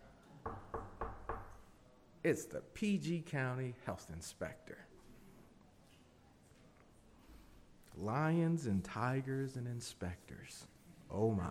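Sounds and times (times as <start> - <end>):
firm knocks on a door: 0.4 - 1.6
speech: 2.2 - 4.9, 8.0 - 11.4.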